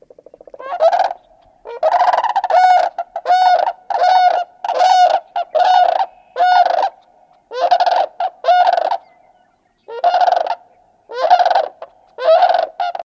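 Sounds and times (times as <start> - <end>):
sandhill cranes bugling unison calls: 0.2 - 13.0.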